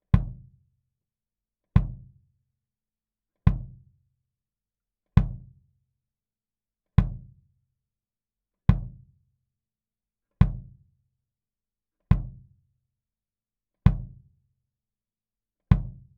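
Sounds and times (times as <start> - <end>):
kick drum recorded with a 15dB pad: 0.0 - 0.6, 1.7 - 2.2, 3.4 - 3.9, 5.2 - 5.6, 7.0 - 7.4, 8.7 - 9.1, 10.4 - 10.8, 12.1 - 12.6, 13.9 - 14.3, 15.7 - 16.1.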